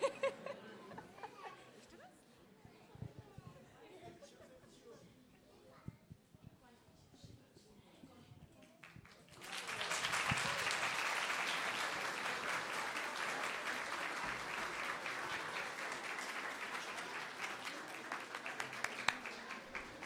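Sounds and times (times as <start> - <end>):
laughter: 0.0 - 2.0
audience applause for a performance by young children: 9.1 - 20.0.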